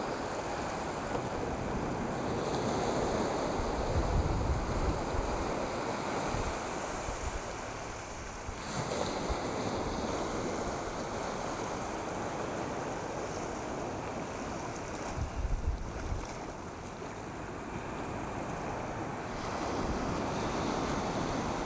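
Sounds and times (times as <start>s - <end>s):
surf breaking on a beach: 0.0s - 21.6s
wind gusts buffeting the microphone: 0.1s - 16.9s, 17.6s - 21.6s.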